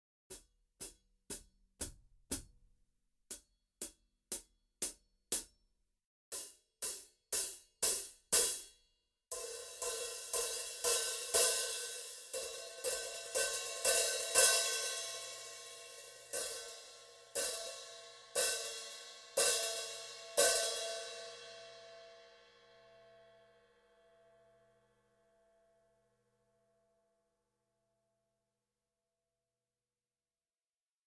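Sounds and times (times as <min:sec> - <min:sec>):
hi-hat played with birch rutes: 0:00.3 - 0:02.5, 0:03.3 - 0:05.6, 0:06.3 - 0:21.4.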